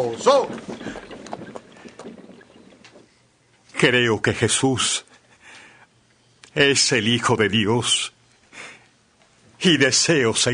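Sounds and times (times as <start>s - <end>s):
speech: 0.0s - 1.0s, 3.8s - 5.1s, 6.6s - 8.2s, 9.6s - 10.5s
horses' hooves clip-clopping as the horses are brought to a halt: 0.0s - 3.2s
low rumbling windy background: 0.0s - 3.2s.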